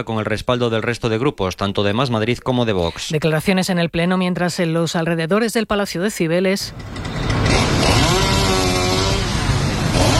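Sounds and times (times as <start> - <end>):
speech: 0.0 - 7.1
chainsaw cutting trees: 6.7 - 10.1.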